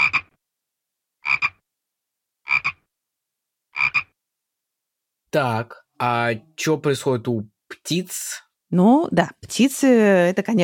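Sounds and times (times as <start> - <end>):
frog croaking with inflated throat vocal sacs: 0.0 - 0.4, 1.2 - 1.6, 2.4 - 2.9, 3.7 - 4.2
speech: 5.3 - 10.6.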